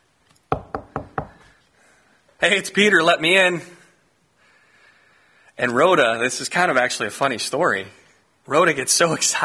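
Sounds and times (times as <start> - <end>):
firm knocking on a wooden door: 0.5 - 1.4
speech: 2.4 - 3.8, 5.6 - 9.4.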